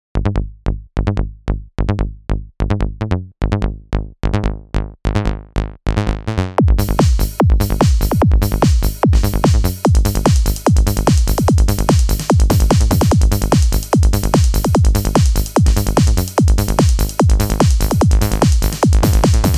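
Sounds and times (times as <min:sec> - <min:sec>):
mono synth bass in goa trance style: 0:00.2 - 0:19.5.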